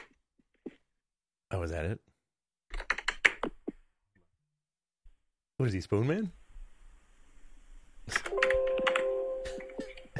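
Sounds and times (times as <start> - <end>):
speech: 1.5 - 2.1, 5.6 - 6.4
computer keyboard typing heard through a phone line: 8.1 - 10.1.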